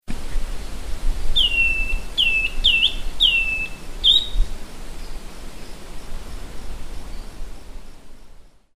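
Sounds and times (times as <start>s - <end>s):
Schiffornis virescens calling: 1.4s - 4.4s.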